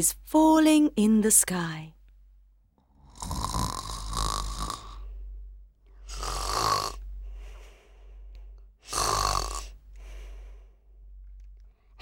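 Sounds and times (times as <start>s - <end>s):
speech: 0.0s - 2.0s
woman snoring asleep in bed at night: 2.8s - 5.2s, 5.9s - 11.0s.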